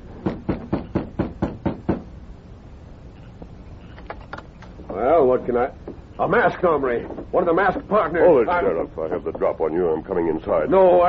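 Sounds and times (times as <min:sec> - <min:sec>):
firm knocks on a wooden front door: 0:00.2 - 0:02.1
speech: 0:05.0 - 0:11.0.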